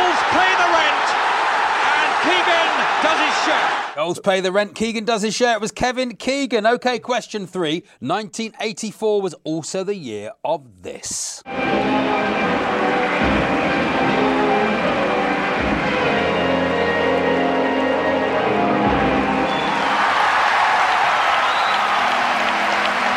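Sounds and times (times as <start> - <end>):
big crowd applauding and cheering in a large arena at an ice rink: 0.0 - 4.0, 11.7 - 23.1
speech: 3.4 - 13.4.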